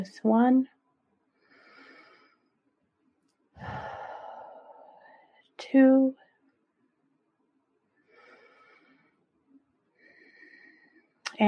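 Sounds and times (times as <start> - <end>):
speech: 0.0 - 0.8, 5.6 - 6.2
deep breaths during a guided relaxation exercise: 1.3 - 2.7, 3.6 - 5.6, 7.9 - 11.2.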